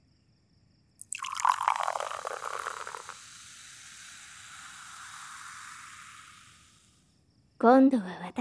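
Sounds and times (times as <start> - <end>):
liquid pouring close to the right ear: 0.9 - 7.0
speech: 7.6 - 8.3.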